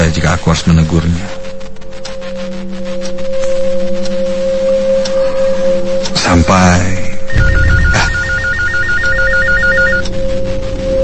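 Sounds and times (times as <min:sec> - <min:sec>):
constant electrical hum: 0:00.0 - 0:11.0
speech: 0:00.1 - 0:01.5
telephone ringing with a rapid warbling trill: 0:07.3 - 0:10.2.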